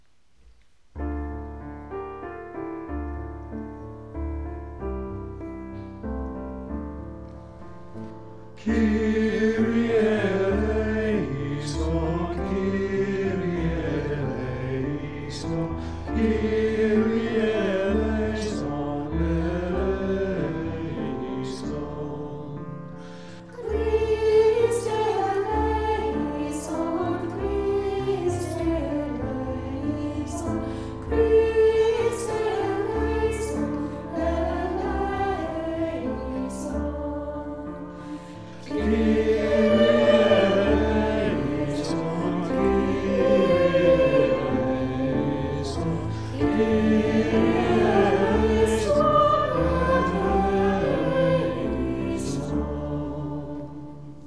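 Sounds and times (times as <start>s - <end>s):
piano: 0.0s - 54.2s
choir singing a kyrie: 7.9s - 54.2s.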